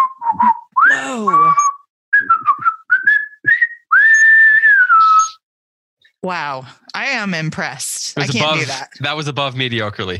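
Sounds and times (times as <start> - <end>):
person whistling a short lively tune: 0.0 - 5.4
speech: 6.3 - 10.1.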